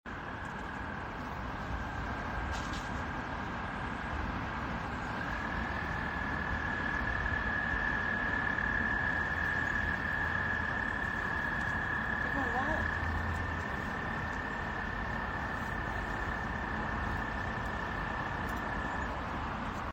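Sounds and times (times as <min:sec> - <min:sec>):
low rumbling background noise: 0:00.1 - 0:19.9
American toad Anaxyrus americanus giving a long high musical trill in Maryland: 0:05.2 - 0:19.2.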